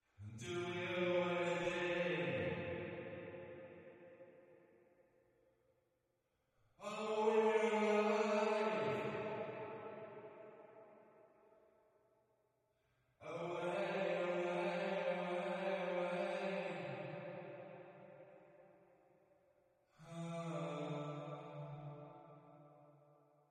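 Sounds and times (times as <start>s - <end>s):
reverberant backing vocals: 0.2s - 4.7s, 6.8s - 10.9s, 13.2s - 18.2s, 20.0s - 22.2s.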